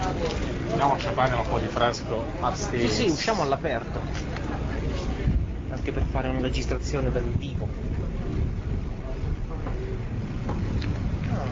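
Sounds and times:
faint drone of a ferry: 0.0 - 11.5
speech: 0.8 - 4.3, 5.7 - 7.9
strong wind roaring on the open deck of a ferry: 5.2 - 11.5.

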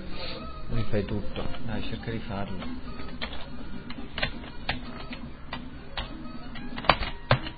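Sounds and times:
steady low hum: 0.0 - 7.5
speech: 0.9 - 3.2
typing on a computer keyboard: 2.6 - 7.5.

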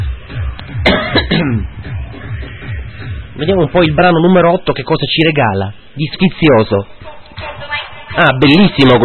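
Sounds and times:
harsh coughs: 0.8 - 1.7
speech: 1.4 - 1.7, 3.4 - 9.0.

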